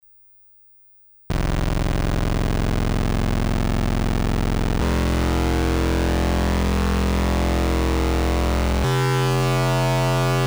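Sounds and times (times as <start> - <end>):
Korg Volca Keys synthesizer uni ring tone: 1.3 - 10.3.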